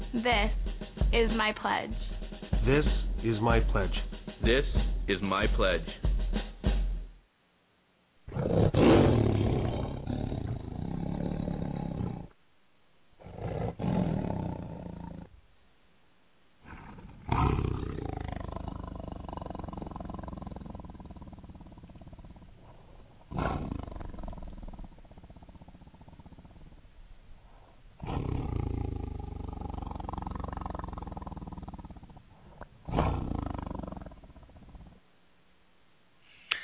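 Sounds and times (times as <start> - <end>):
speech: 0.1 - 6.1
tiger growling and roaring: 8.3 - 12.4, 13.2 - 15.4, 16.6 - 27.1, 27.9 - 35.0.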